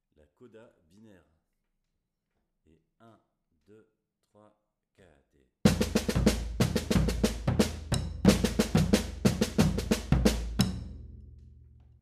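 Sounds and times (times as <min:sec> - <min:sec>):
batucada drumming: 0:05.7 - 0:11.0.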